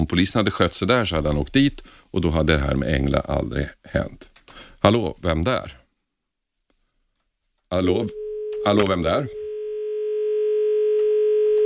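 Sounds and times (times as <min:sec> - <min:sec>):
speech: 0:00.0 - 0:05.8, 0:07.7 - 0:09.4
telephone line tone during a failed call-in: 0:08.1 - 0:11.6.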